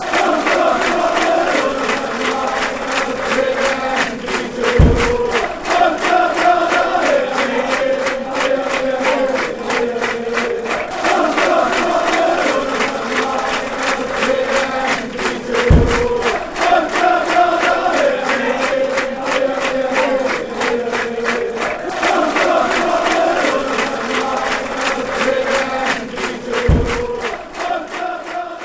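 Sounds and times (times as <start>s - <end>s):
people chanting: 0.0s - 28.6s.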